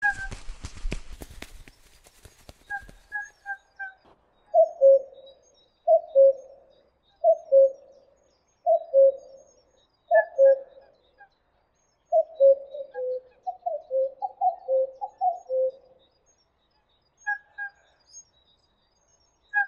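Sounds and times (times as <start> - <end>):
common cuckoo calling two-note cu-coo: 0.0 - 0.8, 2.2 - 11.0, 12.1 - 15.9
clicking and rustling: 0.1 - 3.2.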